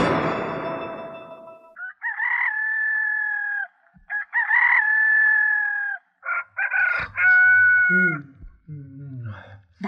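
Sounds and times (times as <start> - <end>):
rooster crowing: 1.8 - 8.2.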